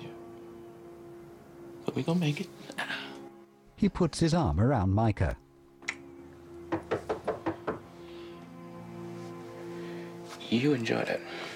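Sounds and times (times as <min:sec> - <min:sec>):
speech: 0:02.0 - 0:03.0, 0:03.8 - 0:05.4, 0:10.5 - 0:11.5
man knocking on a door: 0:06.7 - 0:07.9.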